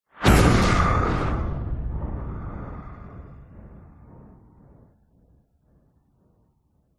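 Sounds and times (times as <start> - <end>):
science fiction explosion: 0.2 - 5.0.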